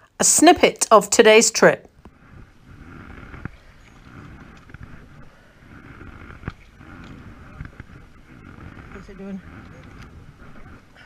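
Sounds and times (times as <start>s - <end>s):
speech: 0.2s - 1.9s
oars rowing a boat on water: 2.0s - 11.0s.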